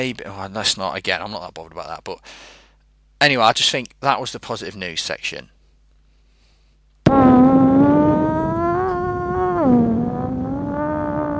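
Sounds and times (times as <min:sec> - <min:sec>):
speech: 0:00.0 - 0:02.6, 0:03.2 - 0:05.6
fart sound effect: 0:07.0 - 0:11.3.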